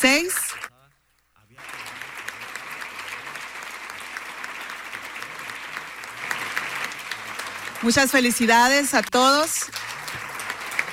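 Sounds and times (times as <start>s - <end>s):
sustained applause from a large audience: 1.5s - 10.9s
speech: 7.8s - 9.8s.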